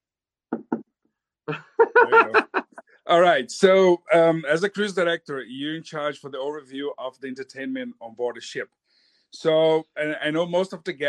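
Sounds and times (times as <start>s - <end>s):
knocking on a tabletop: 0.5s - 0.8s
laughter: 1.5s - 2.8s
speech: 1.5s - 11.0s.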